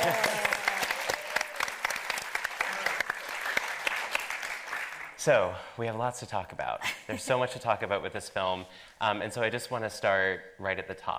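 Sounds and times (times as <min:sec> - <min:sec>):
audience applause for performers: 0:00.0 - 0:05.2
speech: 0:05.2 - 0:11.1.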